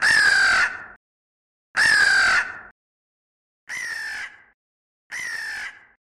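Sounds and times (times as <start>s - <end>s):
crows calling: 0.0s - 1.0s, 1.8s - 2.7s, 3.7s - 6.0s.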